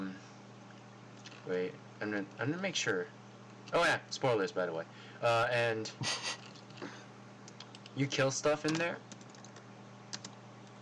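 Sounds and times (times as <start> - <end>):
low hum: 0.0 - 10.8
speech: 1.4 - 6.3, 8.0 - 9.1
computer keyboard typing: 7.5 - 8.0, 8.6 - 10.4.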